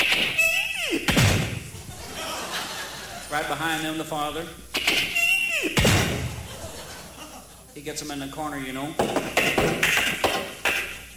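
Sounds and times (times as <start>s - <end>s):
quiet hum: 0.0s - 11.1s
laughter: 1.7s - 3.6s, 5.2s - 7.9s
speech: 3.3s - 5.1s, 7.8s - 9.9s
house door slamming shut: 5.8s - 6.5s.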